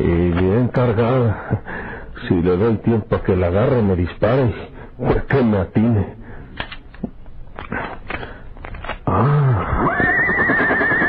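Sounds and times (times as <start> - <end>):
speech: 0.0 - 6.2
horse neighing with a long quavering whinny: 9.1 - 11.0.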